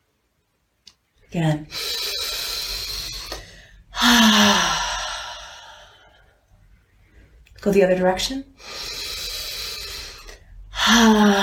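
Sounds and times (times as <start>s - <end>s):
speech: 1.3s - 2.0s, 4.1s - 4.8s, 7.6s - 8.5s, 10.9s - 11.4s
deep breath in and out during a guided sacral chakra meditation: 1.7s - 7.4s, 8.6s - 11.4s.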